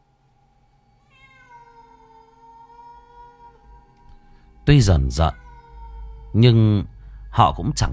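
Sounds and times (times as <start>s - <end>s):
faint hum: 0.0s - 7.9s
cat meowing at night: 1.0s - 6.7s
speech: 4.7s - 5.4s, 6.3s - 7.9s.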